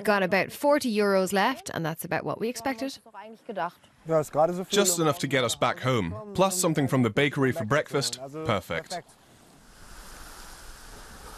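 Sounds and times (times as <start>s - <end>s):
speech: 0.0s - 9.2s
Baltic Sea waves breaking along a shoreline: 9.2s - 11.3s
faint windy hiss: 9.2s - 11.3s.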